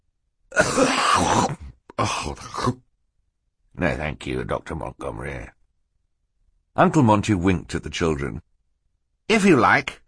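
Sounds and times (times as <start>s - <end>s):
man coughing into a handkerchief: 0.5s - 2.8s
speech: 2.0s - 2.9s, 3.8s - 5.6s, 6.8s - 8.5s, 9.3s - 10.0s.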